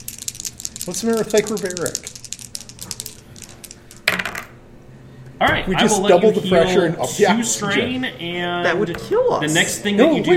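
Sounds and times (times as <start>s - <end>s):
small die clattering across a hard surface: 0.7s - 4.6s
speech: 0.8s - 2.1s, 5.4s - 10.3s.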